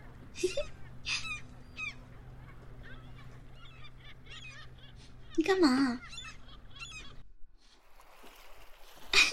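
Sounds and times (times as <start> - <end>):
seagulls calling at the seaside: 0.0 - 7.8
low rumble by the shore: 0.0 - 9.3
speech: 0.4 - 1.2, 5.4 - 6.2
water being splashed at a person in shallow sea: 7.8 - 9.3.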